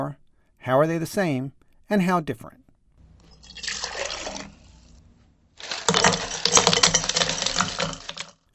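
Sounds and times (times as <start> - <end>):
speech: 0.0 - 2.6
water pouring into a cup: 3.0 - 8.4
ice cubes clattering into a cup: 3.2 - 5.0, 5.6 - 8.5.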